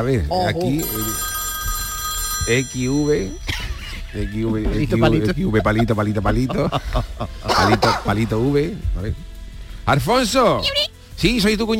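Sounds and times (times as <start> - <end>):
speech: 0.0 - 1.3, 2.4 - 9.3, 9.9 - 11.7
mobile phone ringing tone as a call is placed: 0.6 - 3.5
laughter: 3.4 - 8.2.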